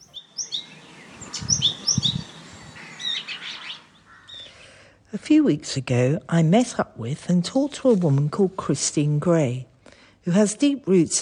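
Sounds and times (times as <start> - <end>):
bramblings, chaffinches, yellowhammers and skylarks chirping on a farm in winter: 0.0 - 4.9
speech: 5.2 - 9.7, 10.3 - 11.1.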